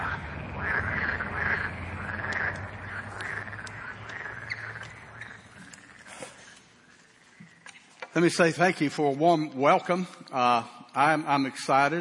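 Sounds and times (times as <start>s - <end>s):
dense chorus of frogs croaking: 0.0s - 8.1s
low hum: 0.0s - 11.9s
sharp clicks: 2.2s - 5.0s
speech: 8.2s - 11.9s.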